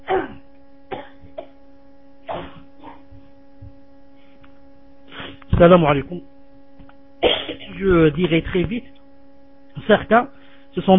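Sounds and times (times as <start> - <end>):
person coughing: 0.0 - 1.6, 2.3 - 3.1, 7.2 - 7.8
faint steady hum: 0.0 - 10.9
speech: 5.6 - 6.4, 7.8 - 9.0, 9.8 - 10.9.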